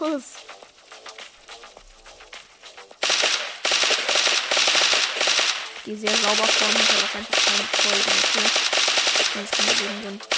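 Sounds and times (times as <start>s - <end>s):
speech: 0.1s - 0.6s, 5.9s - 10.3s
automatic gunfire in a video game shooter: 3.0s - 10.3s.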